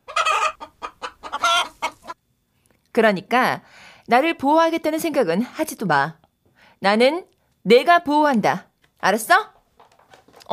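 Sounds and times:
chicken clucking: 0.0 - 2.2
speech: 3.0 - 6.2, 6.8 - 9.5.

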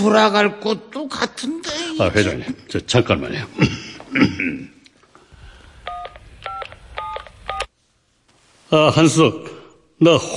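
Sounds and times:
speech: 0.0 - 4.7, 8.7 - 10.3
throat clearing or coughing: 3.7 - 4.8
electronic telephone keypad dialing tones: 5.9 - 7.7.

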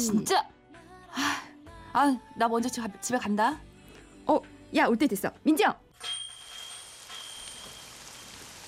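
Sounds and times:
speech: 0.0 - 0.6, 1.2 - 1.4, 2.0 - 3.7, 4.3 - 6.2
steady rain falling: 6.0 - 8.6.

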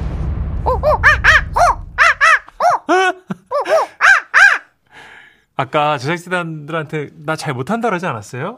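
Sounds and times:
low rumble: 0.0 - 2.6
person imitating monkey screeches: 0.7 - 4.7
speech: 5.6 - 8.5.

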